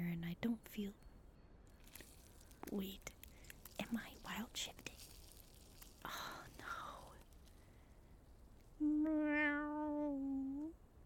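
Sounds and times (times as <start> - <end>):
speech: 0.0 - 1.1, 2.0 - 3.1, 3.8 - 5.1
person imitating a cat meow: 8.8 - 10.7.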